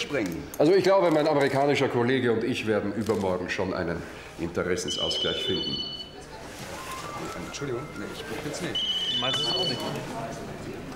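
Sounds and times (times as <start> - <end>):
speech: 0.1 - 6.0, 7.2 - 10.5
overlapping conversation in a busy room: 0.5 - 10.9
mobile phone ringing with a bright repeating electronic tone: 4.9 - 6.3, 6.9 - 10.2.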